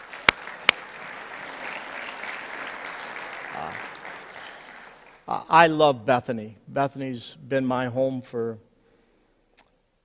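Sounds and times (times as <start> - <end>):
audience applauding: 0.0 - 5.4
speech: 5.5 - 8.7.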